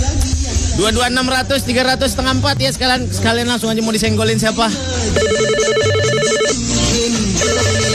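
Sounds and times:
music: 0.0s - 7.9s
speech: 0.8s - 5.8s
telephone ringing with trilling electronic tones: 5.2s - 7.9s.

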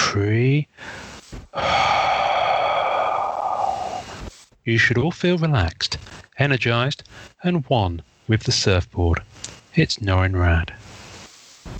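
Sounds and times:
speech: 0.1s - 1.9s, 4.7s - 10.9s
slow deep breathing in and out: 0.7s - 4.3s.

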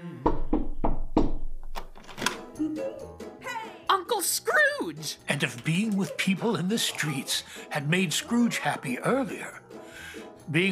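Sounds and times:
firm knocks on a wooden door: 0.3s - 1.6s
speech: 2.6s - 3.6s, 4.2s - 9.6s, 10.5s - 10.7s.

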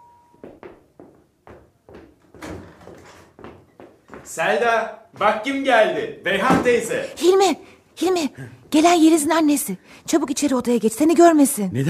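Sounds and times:
front door opening for a guest with knocks, thumps and clacks: 1.5s - 3.6s
speech: 4.3s - 11.8s.

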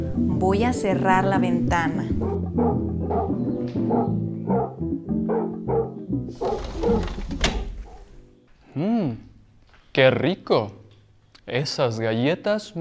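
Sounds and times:
speech: 0.4s - 2.9s, 10.0s - 10.8s, 11.5s - 12.7s
large dog barking deeply: 2.2s - 7.1s
noisy clatter: 6.4s - 8.1s.

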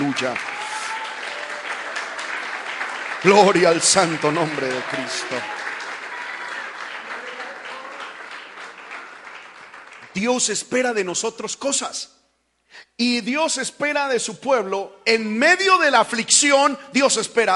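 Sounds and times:
audience applauding loudly: 0.0s - 10.5s
speech: 0.1s - 0.6s, 3.2s - 5.6s, 10.2s - 17.5s.

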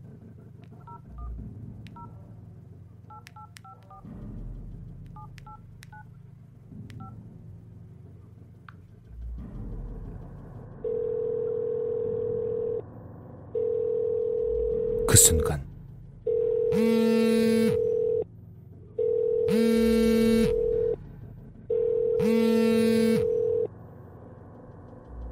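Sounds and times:
phone ringback tone: 10.8s - 12.8s, 13.6s - 15.1s, 16.3s - 18.2s, 19.0s - 21.0s, 21.7s - 23.7s
speech: 15.2s - 15.7s.

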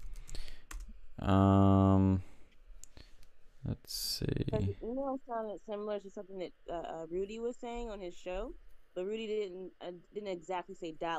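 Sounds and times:
typing on a computer keyboard: 0.0s - 0.9s
speech: 1.2s - 2.3s, 3.7s - 11.1s.

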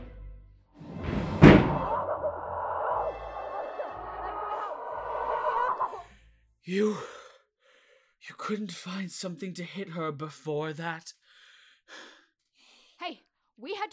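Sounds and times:
door slamming shut: 0.8s - 2.3s
steady grinding drone: 0.8s - 6.0s
speech: 6.7s - 7.2s, 8.2s - 11.2s, 11.9s - 12.1s, 13.1s - 13.9s.

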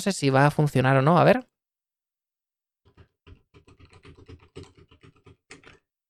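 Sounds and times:
speech: 0.0s - 1.5s
typing hard on a computer keyboard: 2.9s - 6.0s.

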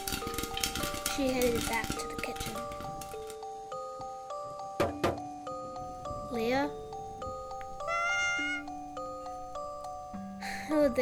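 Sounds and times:
soft sustained musical background: 0.0s - 11.0s
speech: 1.2s - 2.0s
cat meowing: 7.1s - 9.8s.

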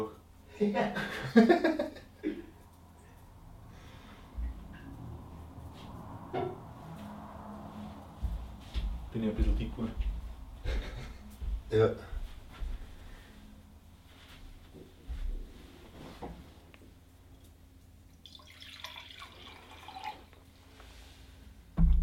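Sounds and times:
speech: 0.0s - 2.0s, 9.2s - 10.1s, 11.7s - 12.1s
low steady hum: 0.0s - 22.0s
water dripping and trickling: 18.1s - 20.4s.

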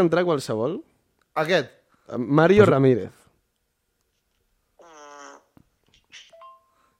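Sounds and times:
speech: 0.0s - 3.2s
buzzy reedy recorded fart played from an app: 4.8s - 5.5s.

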